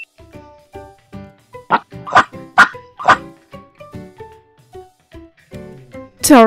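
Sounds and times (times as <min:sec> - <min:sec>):
dog barking: 0:01.7 - 0:03.3.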